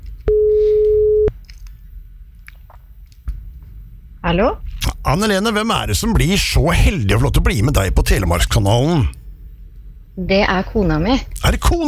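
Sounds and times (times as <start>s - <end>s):
quiet phone line noise: 0.3s - 1.3s
telephone ringing tone during outgoing call: 0.3s - 1.3s
speech: 4.3s - 9.2s, 10.2s - 11.8s.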